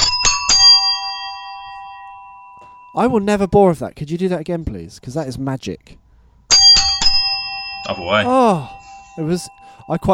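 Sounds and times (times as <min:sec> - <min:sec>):
doorbell chime: 0:00.0 - 0:03.6, 0:06.5 - 0:10.1
speech: 0:03.0 - 0:06.0, 0:07.8 - 0:10.1.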